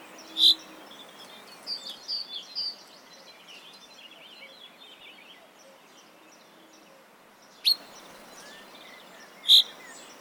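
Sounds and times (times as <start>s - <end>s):
common chaffinch Fringilla coelebs calls: 0.0s - 2.7s, 7.6s - 10.1s
quiet hiss of background noise: 0.0s - 10.1s.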